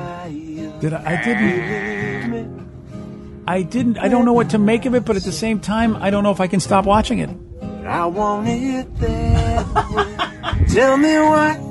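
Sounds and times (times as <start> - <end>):
man singing to goats: 0.0 - 2.7, 3.5 - 11.6
speech: 0.3 - 2.7, 3.5 - 11.6
goats bleating: 0.9 - 2.5, 10.2 - 11.4
laughter: 9.4 - 10.9.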